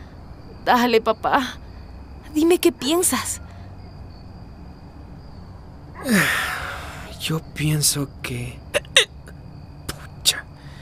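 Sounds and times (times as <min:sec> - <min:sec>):
speech: 0:00.7 - 0:01.6, 0:02.3 - 0:03.4, 0:06.0 - 0:06.5, 0:07.2 - 0:09.1
sharp abrupt hiccups: 0:08.8 - 0:09.2.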